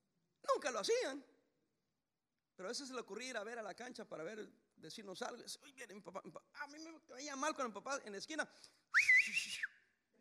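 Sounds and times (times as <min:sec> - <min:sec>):
speech: 0:00.6 - 0:01.3, 0:02.6 - 0:09.8
human whistle calling child home: 0:08.9 - 0:09.9.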